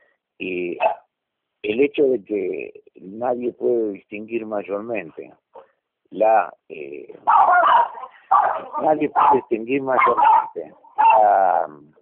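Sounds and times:
speech: 0.4s - 1.0s, 1.6s - 5.4s, 6.1s - 7.7s, 8.6s - 11.9s
agitated dog barking and whimpering: 0.8s - 1.1s, 7.2s - 11.3s.

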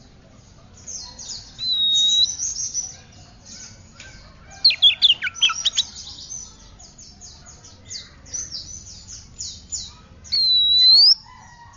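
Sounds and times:
Oriental magpie-robin song with level whistle and buzzy high phrases: 0.0s - 11.7s
Oriental magpie-robin rapid sharp chirping notes: 4.7s - 5.9s, 10.4s - 11.2s.

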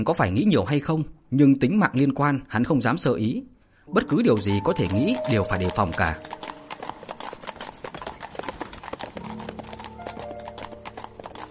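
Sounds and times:
speech: 0.0s - 6.4s
horse-drawn carriage hooves clip-clopping: 4.0s - 11.4s.

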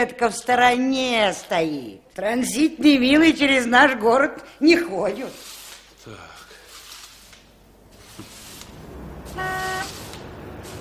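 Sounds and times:
speech: 0.0s - 6.4s
intercity bus engine rumble at a bus station: 7.6s - 10.7s
intercity bus horn blast: 9.0s - 10.2s.

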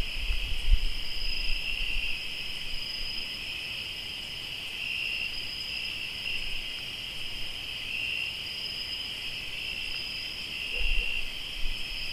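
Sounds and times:
crickets trilling in Tlayacapan Morelos: 0.0s - 12.1s.

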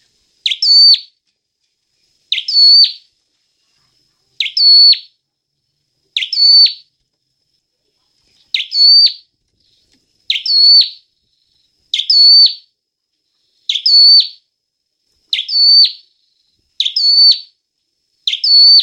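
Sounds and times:
Hill prinia singing whistled phrases: 0.4s - 1.1s, 2.3s - 3.0s, 4.4s - 5.1s, 6.2s - 6.9s, 8.5s - 9.3s, 10.3s - 11.0s, 11.9s - 12.7s, 13.7s - 14.4s, 15.3s - 16.0s, 16.8s - 17.5s, 18.3s - 18.8s.

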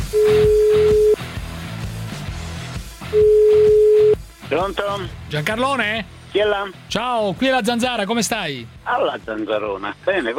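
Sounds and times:
telephone tones while placing a call: 0.1s - 1.2s, 3.1s - 4.1s
speech: 4.5s - 10.3s.

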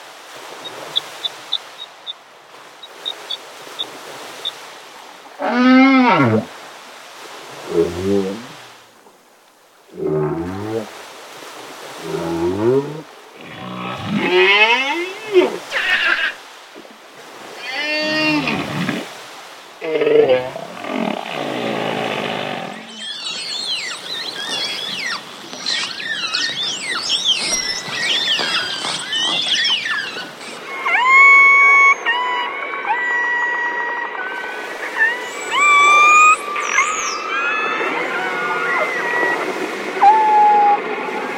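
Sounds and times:
speech: 5.4s - 6.5s
whale song recorded underwater on a dive played from an MP3 player: 5.4s - 6.5s, 7.6s - 8.6s, 9.9s - 10.9s, 11.9s - 16.4s, 17.5s - 19.1s, 19.8s - 41.3s.

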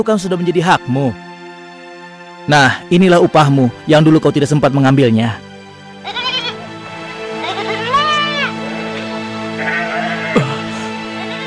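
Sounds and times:
speech: 0.0s - 1.3s, 2.5s - 5.4s
herd of goats bleating: 6.0s - 11.4s.

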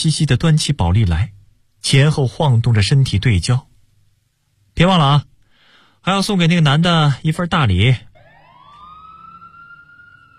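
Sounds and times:
speech: 0.0s - 3.7s, 4.8s - 5.3s, 6.0s - 8.1s
police car siren wailing through the night: 8.1s - 10.3s.

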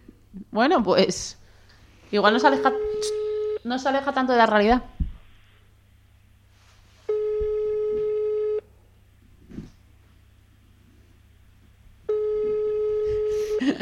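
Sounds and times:
speech: 0.5s - 1.4s, 2.1s - 4.9s
telephone busy signal in buzzy tone bursts: 2.5s - 3.6s, 7.1s - 8.6s, 12.1s - 13.6s.

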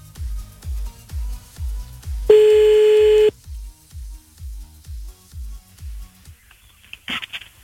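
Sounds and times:
telephone beep tone during redial after a dropped call: 2.3s - 3.3s.

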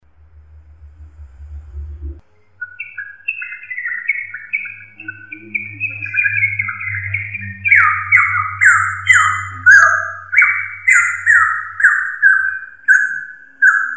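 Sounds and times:
low steady hum: 0.0s - 13.9s
drongo song of quick whistled notes and slurred phrases: 2.2s - 13.9s.

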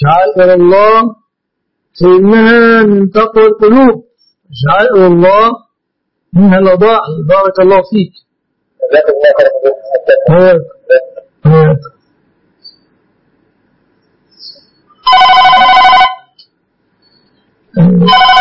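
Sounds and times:
speech: 0.0s - 1.2s, 2.0s - 5.6s, 6.3s - 8.2s, 8.8s - 12.0s, 15.1s - 16.2s, 17.8s - 18.3s
incoming call telephone ringtone: 15.0s - 16.4s, 18.0s - 18.3s.

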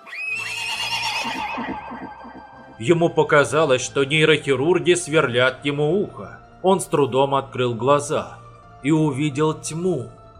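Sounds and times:
horse whinnying: 0.0s - 2.7s
speech: 1.2s - 2.2s, 2.8s - 10.2s.

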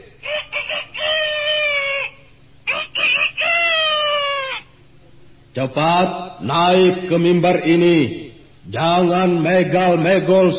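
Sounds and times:
bantam rooster crowing: 0.2s - 4.8s
speech: 5.6s - 10.5s.

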